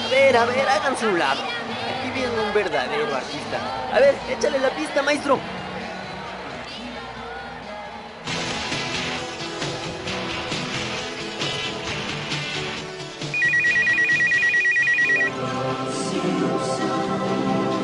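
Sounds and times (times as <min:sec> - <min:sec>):
speech: 0:00.2 - 0:05.6
busy music: 0:08.3 - 0:17.7
telephone ringing with a rapid electronic trill: 0:13.3 - 0:15.3.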